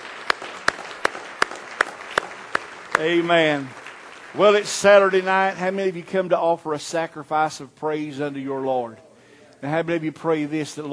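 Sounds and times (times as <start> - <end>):
dense wash of scattered hand claps in a reverberant room: 0.0 - 4.6
audience clapping in unison on a steady beat: 0.0 - 5.5
speech: 3.0 - 10.9.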